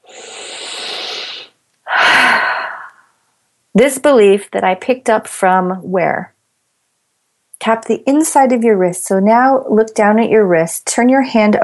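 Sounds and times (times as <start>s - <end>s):
big deep breath: 0.0s - 3.2s
speech: 3.8s - 6.4s, 7.6s - 11.6s.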